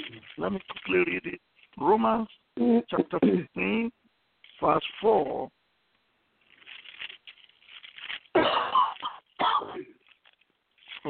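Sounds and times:
speech: 0:00.4 - 0:04.0, 0:04.6 - 0:05.6
person coughing during a Bible reading in a sermon: 0:03.0 - 0:03.6, 0:08.3 - 0:10.0.

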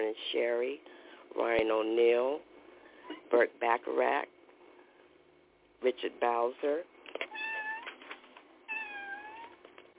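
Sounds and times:
speech: 0:00.1 - 0:02.5, 0:03.3 - 0:04.3, 0:05.8 - 0:06.9
pet cat meowing: 0:07.3 - 0:08.0, 0:08.7 - 0:09.6.

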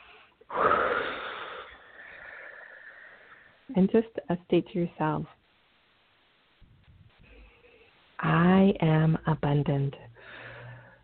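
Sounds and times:
deep breath in and out: 0:00.0 - 0:03.7, 0:10.2 - 0:11.0
speech: 0:03.7 - 0:05.4, 0:08.7 - 0:10.4.

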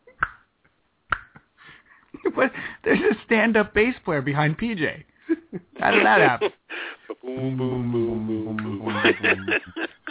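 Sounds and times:
finger snapping: 0:00.2 - 0:00.4, 0:01.1 - 0:01.5
speech: 0:02.4 - 0:06.6, 0:07.4 - 0:09.9
laughter: 0:05.3 - 0:07.5, 0:08.3 - 0:10.0.

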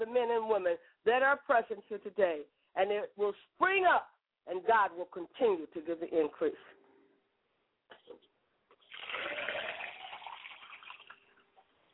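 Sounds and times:
speech: 0:00.0 - 0:06.8
water pouring into a glass: 0:08.8 - 0:11.4.

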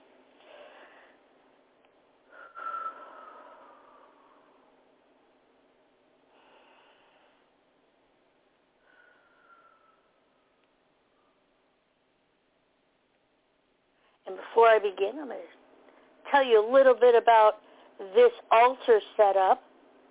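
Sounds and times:
slow deep breathing: 0:00.3 - 0:01.3, 0:02.2 - 0:04.9, 0:06.2 - 0:07.6, 0:08.7 - 0:11.5
speech: 0:14.3 - 0:15.6, 0:16.3 - 0:19.7.

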